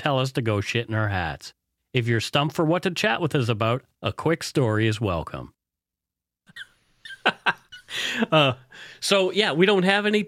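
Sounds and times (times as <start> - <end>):
speech: 0.0 - 5.6, 6.5 - 10.2
man imitating a dog's whimpering: 6.5 - 7.2.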